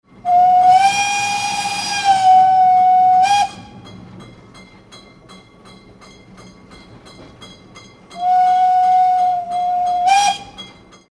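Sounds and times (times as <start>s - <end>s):
old train horn: 0.2s - 3.8s, 8.2s - 10.6s.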